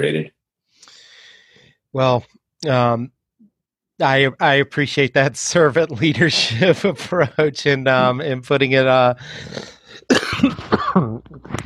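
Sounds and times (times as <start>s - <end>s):
speech: 0.0s - 0.4s, 1.9s - 3.2s, 4.0s - 11.6s
man coughing trying to stifle it: 10.1s - 11.5s.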